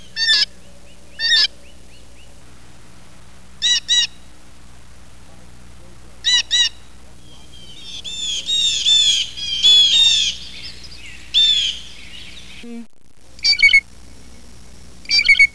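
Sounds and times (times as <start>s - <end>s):
blue jay: 0.0s - 2.4s, 3.6s - 4.4s, 6.2s - 12.7s, 13.4s - 13.8s, 15.0s - 15.5s.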